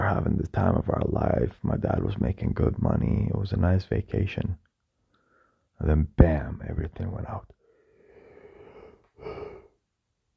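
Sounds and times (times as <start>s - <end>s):
speech: 0.2s - 4.6s, 5.8s - 7.6s
person yawning: 8.8s - 9.7s.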